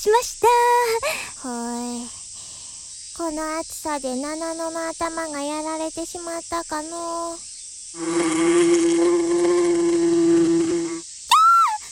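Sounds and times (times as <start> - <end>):
speech: 0.0 - 2.2, 3.2 - 9.5
bee buzzing in flight: 8.0 - 11.0
high sliding whistle-like tone: 10.9 - 11.8.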